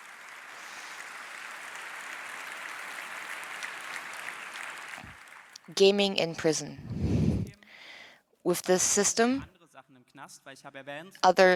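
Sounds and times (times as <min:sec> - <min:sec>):
crowd applauding: 0:00.0 - 0:05.6
speech: 0:05.7 - 0:06.9, 0:08.5 - 0:09.6, 0:10.3 - 0:11.5.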